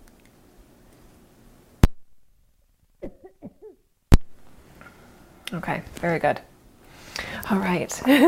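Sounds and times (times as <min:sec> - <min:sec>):
person coughing: 0:03.0 - 0:03.8
speech: 0:05.5 - 0:06.5, 0:07.5 - 0:08.2.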